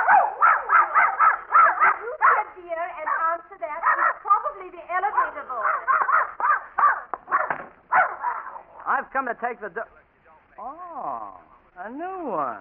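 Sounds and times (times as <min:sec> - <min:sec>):
dog whining and barking: 0:00.0 - 0:02.5, 0:03.1 - 0:04.3, 0:05.2 - 0:08.7
speech: 0:09.2 - 0:10.1, 0:11.8 - 0:12.5.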